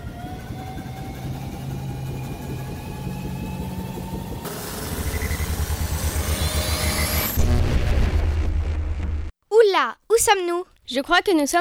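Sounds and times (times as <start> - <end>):
sci-fi time machine departure sound effect: 0.0 - 9.3
speech: 9.8 - 11.5.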